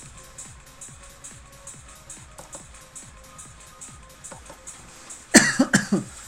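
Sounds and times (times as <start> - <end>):
quick harsh coughs: 5.3 - 6.1.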